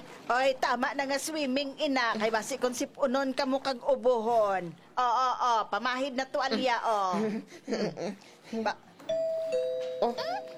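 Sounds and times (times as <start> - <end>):
speech: 0.3 - 9.4, 10.0 - 10.5
doorbell two-tone ding-dong chime: 9.1 - 10.5.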